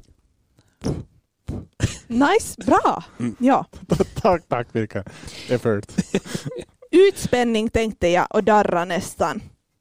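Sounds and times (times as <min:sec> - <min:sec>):
voice imitating puffing with short breathy bursts: 0:00.8 - 0:01.9
speech: 0:02.1 - 0:09.5
laughter: 0:03.8 - 0:04.6, 0:05.4 - 0:07.1.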